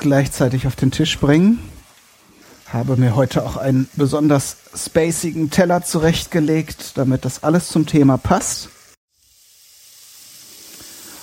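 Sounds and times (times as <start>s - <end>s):
speech: 0.0s - 1.7s, 2.7s - 8.8s
fish cubes sizzling in a hot pan: 0.0s - 11.2s.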